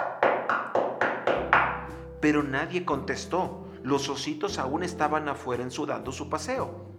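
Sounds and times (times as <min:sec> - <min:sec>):
knocking on a wooden door: 0:00.0 - 0:02.0
speech: 0:02.2 - 0:06.9.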